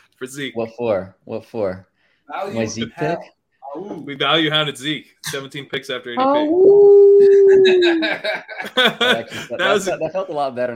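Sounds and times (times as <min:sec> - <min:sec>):
speech: 0:00.2 - 0:10.7
person howling imitating a hound: 0:06.4 - 0:08.1
laughter: 0:07.2 - 0:10.1.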